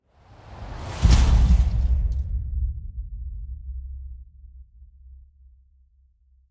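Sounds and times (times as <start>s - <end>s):
wind gust hit: 0.0s - 2.6s.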